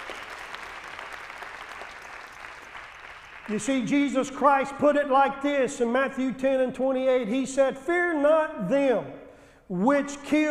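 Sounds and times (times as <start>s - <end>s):
church audience clapping in praise during a morning service: 0.0s - 3.9s
speech: 3.5s - 10.4s.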